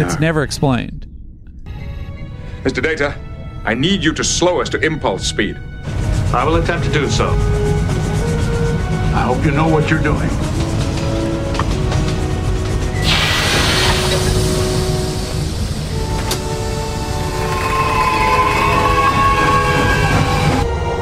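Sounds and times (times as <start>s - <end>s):
speech: 0.0s - 1.1s, 2.6s - 5.7s, 6.3s - 7.7s, 9.2s - 10.5s
train rumbling on rails: 1.8s - 21.0s
hissing surge: 12.8s - 20.6s
metallic squeals and clanks of a train: 16.0s - 20.7s.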